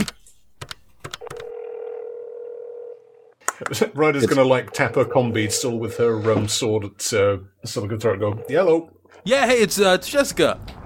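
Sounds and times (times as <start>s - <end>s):
clicks and clunks of a bar's phone handset and buttons: 0.0s - 1.5s
humming telephone dial tone: 0.0s - 3.4s
speech: 3.6s - 10.8s.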